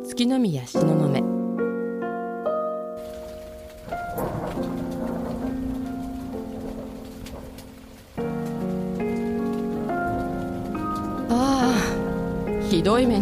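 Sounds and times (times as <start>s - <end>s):
speech: 0.0s - 1.3s, 12.8s - 13.2s
melodic music track: 0.0s - 13.2s
heavy downpour: 3.0s - 13.2s.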